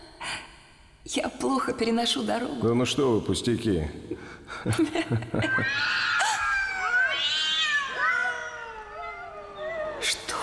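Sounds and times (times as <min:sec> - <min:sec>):
speech: 0:01.0 - 0:06.1
laughter: 0:04.5 - 0:06.4
cats yowling: 0:05.5 - 0:10.3.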